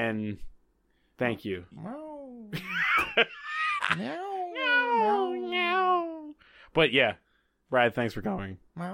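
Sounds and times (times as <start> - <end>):
speech: 0.0 - 0.6, 1.2 - 5.9, 6.8 - 8.9
person imitating cat meows: 3.9 - 6.4.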